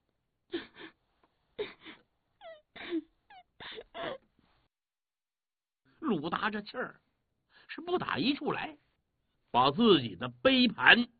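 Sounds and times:
voice imitating a woman crying and sobbing: 0:00.5 - 0:01.0, 0:01.6 - 0:04.3
speech: 0:06.1 - 0:07.1, 0:07.7 - 0:08.8, 0:09.5 - 0:11.1.

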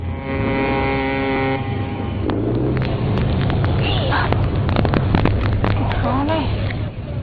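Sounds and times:
fishing boat motor droning: 0:00.0 - 0:02.2
harbor noise at a fishing port: 0:00.0 - 0:07.2.

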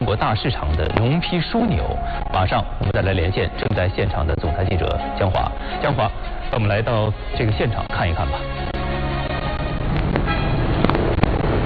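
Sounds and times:
speech: 0:00.1 - 0:08.8
trucks driving in and out of an agricultural wholesale center in Youyang China: 0:08.3 - 0:11.6
short vehicle horn toots: 0:10.2 - 0:10.7.

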